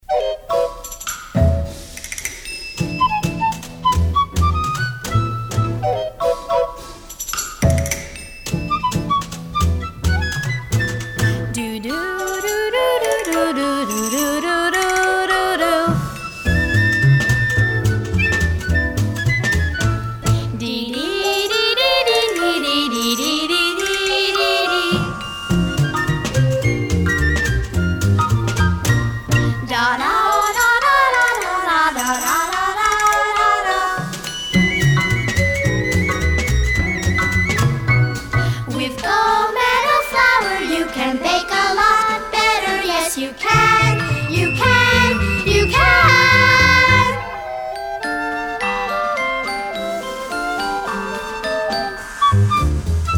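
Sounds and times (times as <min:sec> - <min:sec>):
background music: 0:00.0 - 0:53.1
jingle: 0:12.1 - 0:15.0, 0:22.2 - 0:27.3, 0:32.0 - 0:42.8, 0:43.4 - 0:52.5.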